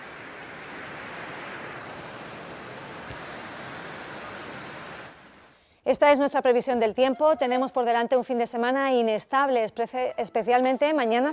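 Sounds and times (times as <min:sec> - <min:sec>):
floodwater rushing down a town street: 0:00.0 - 0:05.6
speech: 0:05.8 - 0:11.3.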